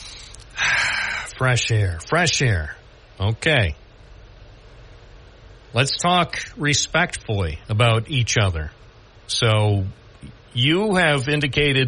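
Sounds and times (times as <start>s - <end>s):
caller on a phone line taking a deep breath: 0.0s - 1.4s
speech: 1.4s - 3.8s, 5.7s - 11.8s.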